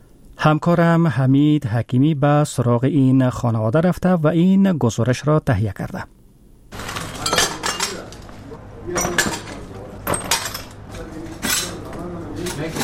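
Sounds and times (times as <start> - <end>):
low hum: 0.0 - 12.8
speech: 0.4 - 6.2
broken glass shards clinking and scraping as swept up in a rocket-damaged house: 6.8 - 8.2, 9.0 - 10.8, 11.4 - 12.8.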